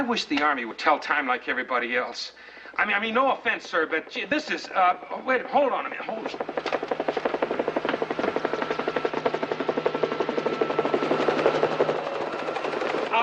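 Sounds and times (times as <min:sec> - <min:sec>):
speech: 0:00.0 - 0:06.9
helicopter rotor blades thudding: 0:00.0 - 0:13.2.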